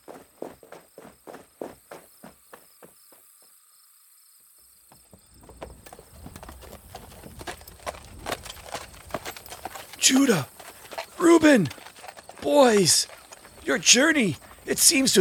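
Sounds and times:
hooves clip-clopping from a caravan of donkeys carrying full bags: 0.0s - 3.8s, 4.5s - 15.1s
insect chirr: 0.0s - 15.1s
speech: 10.1s - 10.5s, 11.2s - 11.8s, 12.4s - 15.1s.

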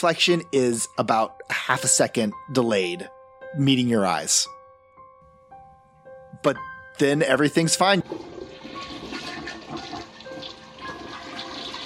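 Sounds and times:
speech: 0.0s - 4.6s, 6.4s - 8.9s
toilet flushing: 7.9s - 11.8s.

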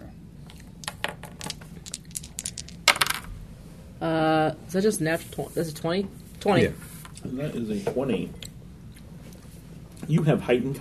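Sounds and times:
dice rolling on a hard tabletop: 0.8s - 3.4s
speech: 4.0s - 8.4s, 10.1s - 10.8s.

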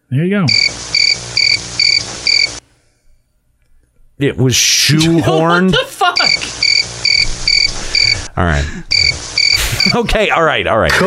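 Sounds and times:
speech: 0.1s - 0.8s, 4.2s - 6.5s, 8.4s - 9.2s, 9.8s - 11.0s
crickets chirping: 0.5s - 2.6s, 6.2s - 8.3s, 8.9s - 9.9s.

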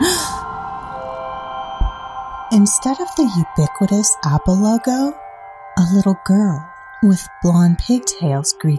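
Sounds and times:
woman gasping in surprise: 0.0s - 0.4s
speech: 2.5s - 5.2s, 5.8s - 8.7s.

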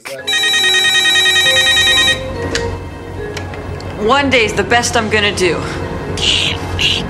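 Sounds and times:
telephone ringing with a bright buzzing electronic tone: 0.2s - 2.5s
speech: 4.1s - 7.0s.

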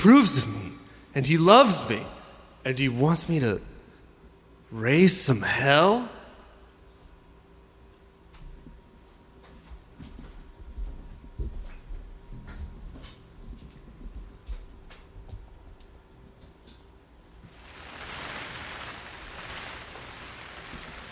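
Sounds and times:
speech: 0.0s - 0.6s, 1.2s - 3.7s, 4.7s - 6.2s
rain heard through glassless windows at a monastery: 17.5s - 21.0s.

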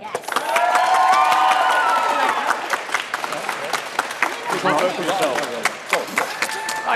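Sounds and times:
audience applauding for debate team: 0.0s - 6.9s
cheers and whoops: 0.1s - 2.6s, 6.2s - 6.9s.

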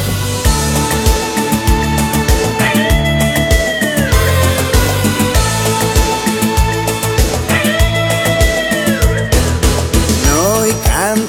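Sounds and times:
upbeat instrumental intro of cartoon theme song with drums, bass and melody: 0.0s - 11.2s.

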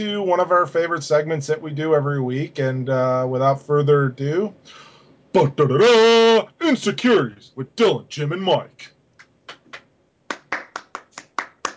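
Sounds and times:
speech: 0.0s - 8.9s
hand clapping by one or two people: 9.2s - 11.7s.

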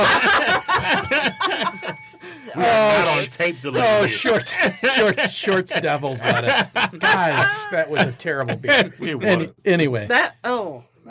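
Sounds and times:
several people laughing and snickering: 0.0s - 9.5s
bell ringing with a bright lingering tone: 0.1s - 4.8s
speech: 2.6s - 10.9s.

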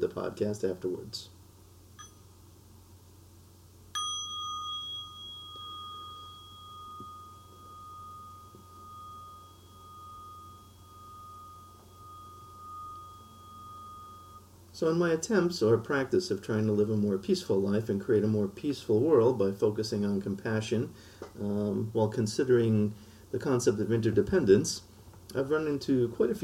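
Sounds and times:
speech: 0.0s - 1.4s, 14.8s - 26.4s
quiet low hum: 0.0s - 26.4s
mindfulness bell rung as a practice bell: 2.0s - 2.3s, 3.9s - 14.5s.

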